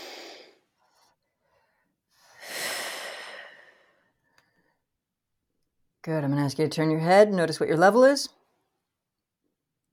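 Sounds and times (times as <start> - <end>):
deep breathing during a guided coaching exercise: 0.0 - 4.8
speech: 6.0 - 8.4.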